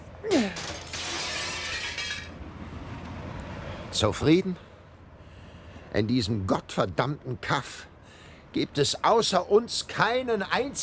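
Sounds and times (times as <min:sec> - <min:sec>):
window glass being smashed: 0:00.4 - 0:02.3
glass fragments tinkling: 0:00.6 - 0:02.3
speech: 0:04.0 - 0:04.7, 0:06.0 - 0:07.9, 0:08.5 - 0:10.8.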